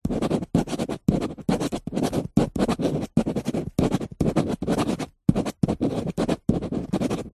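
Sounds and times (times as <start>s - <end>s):
biro pen writing on glossy paper in an office: 0.0s - 7.3s.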